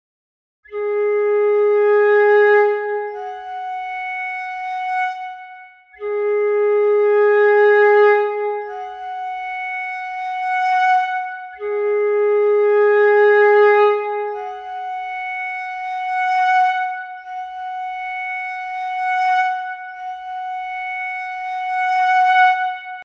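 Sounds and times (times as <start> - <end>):
sampled flute passage with reverb: 0.7 - 23.0.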